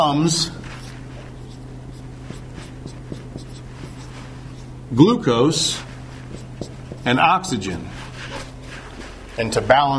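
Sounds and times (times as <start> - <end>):
speech: 0.0 - 0.6, 4.9 - 5.9, 7.0 - 8.0, 9.4 - 9.9
steady low hum: 0.0 - 9.9
writing on a board: 0.6 - 4.8, 5.7 - 9.3.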